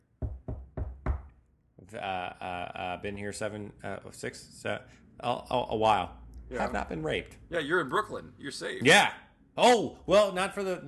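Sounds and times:
knuckles knocking on wood: 0.2 - 1.3
speech: 1.9 - 10.8.

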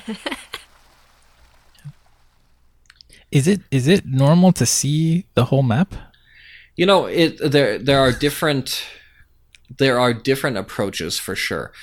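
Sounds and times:
speech: 0.0 - 0.5, 3.3 - 6.1, 6.8 - 9.0, 9.7 - 11.8
laughter: 0.0 - 0.7
water splashes and drips: 0.0 - 3.2.

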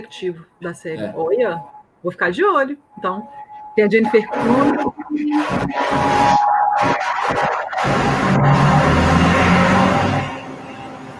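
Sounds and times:
speech: 0.0 - 8.8
dense city street traffic noise: 4.2 - 11.1.

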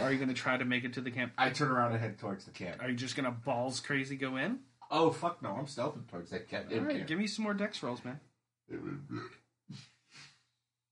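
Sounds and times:
speech: 0.1 - 10.3
loud throaty beer burps: 8.7 - 9.4.

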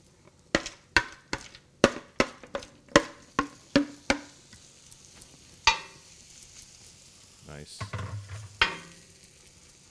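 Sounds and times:
okonomiyaki pancakes sizzling on a griddle: 0.0 - 9.9
metal spatula tapping on a griddle while frying okonomiyaki pancakes: 0.6 - 4.4, 5.7 - 6.1, 7.8 - 9.1.

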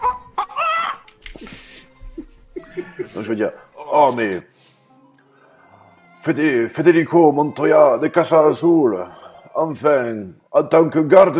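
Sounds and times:
chicken clucking and squawking: 0.0 - 3.2
laughter: 1.2 - 4.3
speech: 3.2 - 4.5, 6.2 - 11.3.

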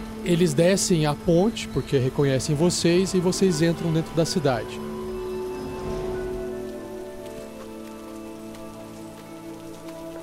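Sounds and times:
heavy rain pattering densely on surfaces: 0.0 - 10.2
speech: 0.2 - 4.9.

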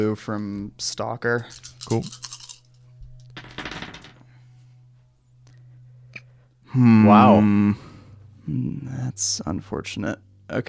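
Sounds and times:
speech: 0.0 - 2.4, 6.8 - 7.9, 8.5 - 10.6
steady low hum: 0.0 - 10.6
handful of dice clattering across a hard table: 1.5 - 4.3.

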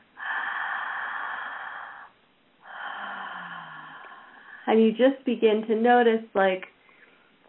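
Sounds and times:
slow deep breath in and out during a breathing exercise: 0.0 - 4.7
speech: 4.7 - 6.7.

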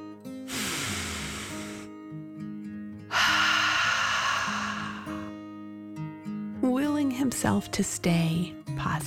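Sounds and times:
soft steady music: 0.0 - 9.0
deep breath in and out: 0.5 - 2.0, 3.1 - 5.4
speech: 7.4 - 9.0.

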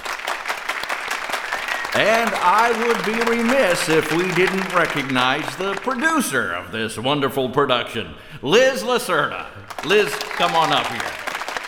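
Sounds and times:
audience applause for a presentation by young people and an adult choir: 0.0 - 6.3, 9.6 - 11.6
speech: 2.0 - 11.2.

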